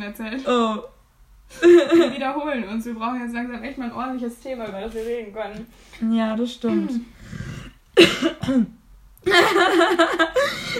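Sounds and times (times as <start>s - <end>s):
speech: 0.0s - 10.7s
person coughing: 8.0s - 8.8s
laughter: 9.3s - 10.7s.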